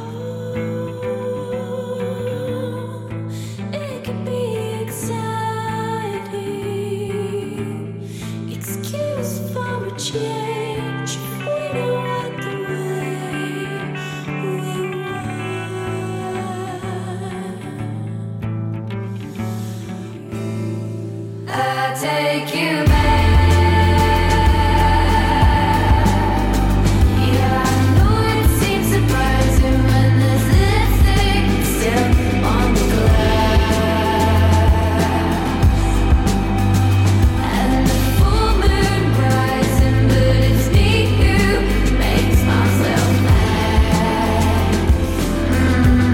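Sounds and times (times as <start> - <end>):
sustained guitar chords in an indie rock song: 0.0 - 46.1
driving drum beat in an indie rock song: 22.9 - 46.1.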